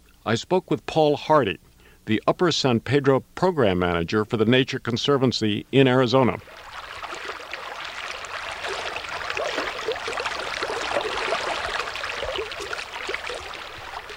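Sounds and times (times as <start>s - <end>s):
speech: 0.2s - 6.7s
river flowing over shallow stones in Arizona: 6.4s - 14.1s.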